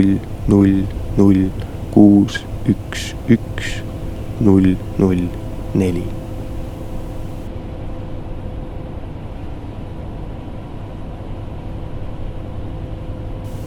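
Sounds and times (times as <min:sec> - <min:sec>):
speech: 0:00.0 - 0:06.2
bus engine drone heard inside the bus: 0:00.0 - 0:07.5
road noise inside a bus: 0:00.0 - 0:07.5.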